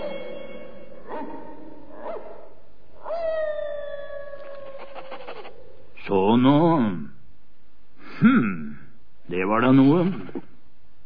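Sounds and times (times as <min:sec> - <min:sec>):
dogs barking an alarm relay: 0:01.0 - 0:02.6
dog howling: 0:01.0 - 0:05.9
dogs yipping: 0:01.1 - 0:03.4, 0:04.4 - 0:05.8
speech: 0:06.1 - 0:07.1, 0:09.3 - 0:10.3.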